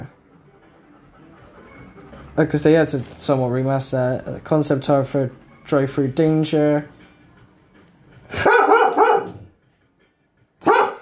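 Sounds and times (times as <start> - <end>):
speech: 2.4 - 7.0
dog barking: 8.3 - 9.5, 10.6 - 11.0.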